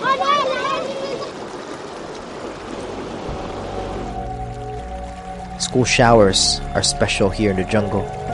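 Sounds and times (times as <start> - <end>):
river water flowing: 0.0 - 8.3
low droning hum: 2.5 - 8.3
speech: 5.7 - 8.2.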